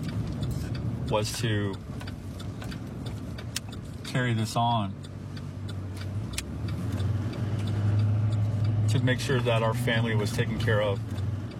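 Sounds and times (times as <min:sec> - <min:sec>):
car engine hum and road rumble driving along back roads: 0:00.0 - 0:11.5
speech: 0:01.1 - 0:01.9, 0:04.1 - 0:05.0, 0:08.9 - 0:11.1.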